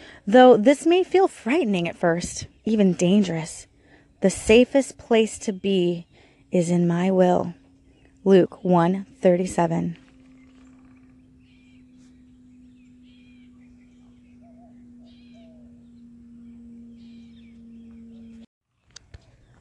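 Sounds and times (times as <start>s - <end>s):
steady low hum: 0.0s - 18.5s
speech: 0.2s - 7.6s, 8.2s - 10.0s
woodpecker chirping outdoors: 6.0s - 8.9s, 10.0s - 18.4s.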